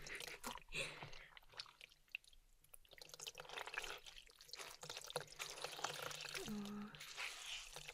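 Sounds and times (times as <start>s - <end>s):
water dripping and trickling: 0.0s - 7.9s.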